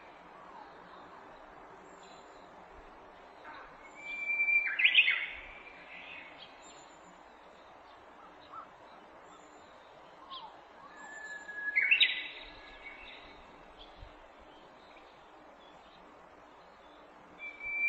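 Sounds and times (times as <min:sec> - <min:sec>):
Japanese bush warbler song: 0:03.2 - 0:17.8.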